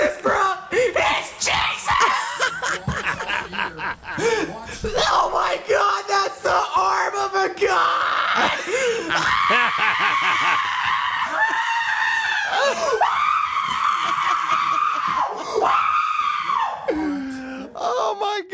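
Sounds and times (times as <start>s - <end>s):
man screaming excitedly with whoops and yells: 0.0s - 2.7s, 4.8s - 16.9s
laughter: 2.0s - 4.9s, 8.4s - 13.0s.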